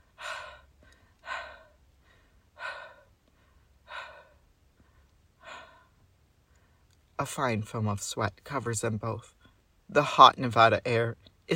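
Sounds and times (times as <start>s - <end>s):
two sweaty people panting softly catching their breath after kissing in hot Nevada air: 0.0s - 6.9s
speech: 7.2s - 11.5s.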